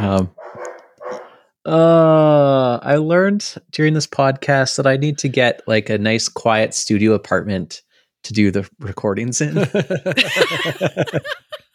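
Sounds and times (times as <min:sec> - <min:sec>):
speech: 0:00.1 - 0:00.4, 0:01.6 - 0:11.6
dog barking: 0:00.4 - 0:01.4
laughter: 0:09.5 - 0:11.7.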